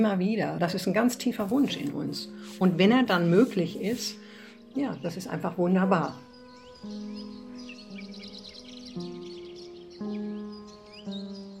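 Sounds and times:
speech: 0:00.0 - 0:06.2, 0:06.8 - 0:07.4
sustained low musical tones: 0:00.0 - 0:11.5
startled flock of small birds chirping as it flies up: 0:02.5 - 0:11.5.

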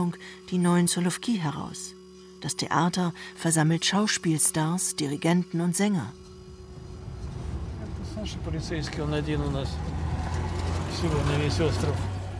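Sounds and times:
speech: 0:00.0 - 0:06.3, 0:08.2 - 0:10.0, 0:11.0 - 0:12.1
car engine rumble while driving to Sekirnaya Gora on Solovki: 0:06.3 - 0:12.3.

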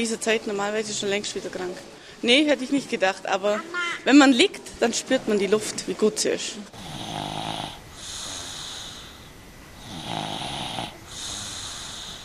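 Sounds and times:
speech: 0:00.0 - 0:06.9
small children snoring softly: 0:06.7 - 0:12.2.

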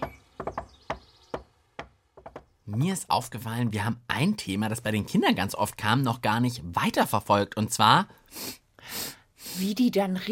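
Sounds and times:
crisp knocking on a door in a playful rhythm: 0:00.0 - 0:02.8
speech: 0:02.7 - 0:09.0, 0:09.6 - 0:10.3.

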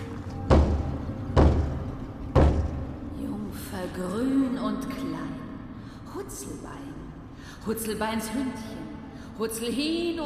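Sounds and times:
knocking on a thick wooden door deep underground: 0:00.4 - 0:03.0
speech: 0:03.9 - 0:05.4, 0:06.2 - 0:10.2.

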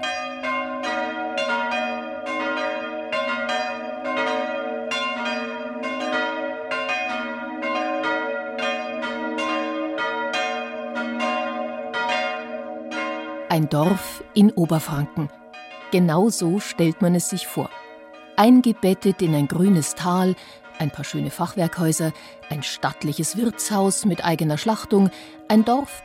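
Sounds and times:
church bells ringing the midday chime: 0:00.0 - 0:26.0
speech: 0:13.5 - 0:17.7, 0:18.4 - 0:26.0.

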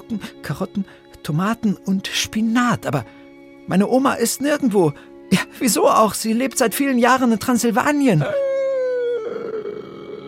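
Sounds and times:
speech: 0:00.1 - 0:08.5
loud drawn-out howl from inside a house: 0:08.2 - 0:10.2.

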